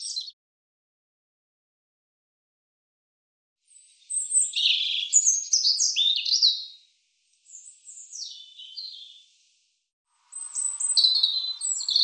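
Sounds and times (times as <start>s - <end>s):
European robin singing: 0.0s - 0.4s, 3.7s - 9.4s, 10.3s - 12.0s.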